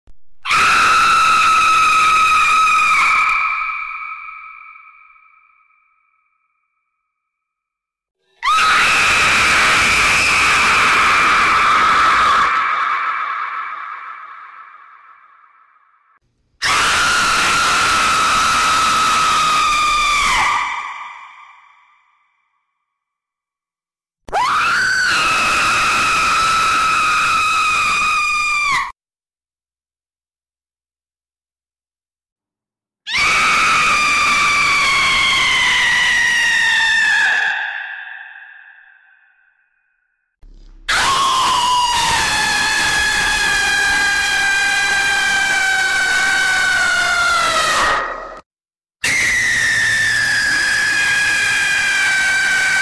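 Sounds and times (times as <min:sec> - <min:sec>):
scary screams: 0:00.4 - 0:06.4, 0:08.3 - 0:15.9, 0:16.6 - 0:22.4, 0:24.3 - 0:29.0, 0:33.1 - 0:39.7, 0:40.8 - 0:48.4, 0:49.0 - 0:52.8.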